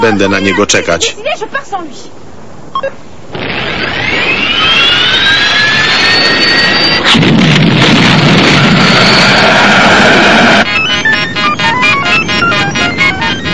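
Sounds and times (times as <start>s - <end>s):
speech: 0.0s - 2.2s, 2.8s - 5.5s
jet-like roar of an aircraft taking off: 3.3s - 13.5s.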